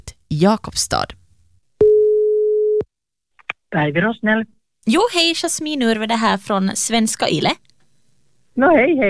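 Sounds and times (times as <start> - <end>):
speech: 0.3 - 1.2, 3.7 - 7.6, 8.6 - 9.0
telephone ringback tone on an outgoing call: 1.8 - 2.8.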